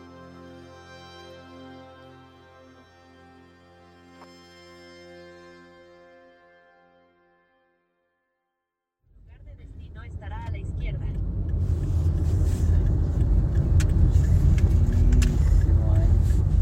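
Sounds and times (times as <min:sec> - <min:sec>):
car engine rumbling as car drives off: 0:09.1 - 0:16.5.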